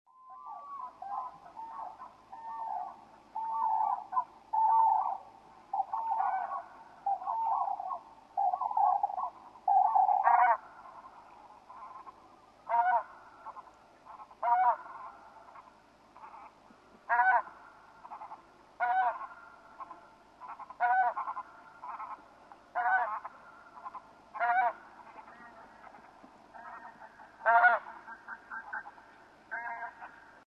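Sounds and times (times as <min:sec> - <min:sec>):
Anser fabalis calling: 0:00.4 - 0:30.4.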